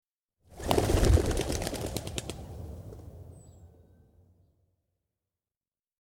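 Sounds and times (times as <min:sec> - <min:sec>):
pigeons' wingbeats as the birds rise into flight: 0:00.5 - 0:03.0.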